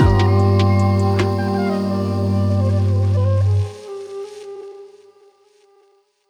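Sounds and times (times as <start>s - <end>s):
pleasant dissonant pad: 0.0s - 3.7s.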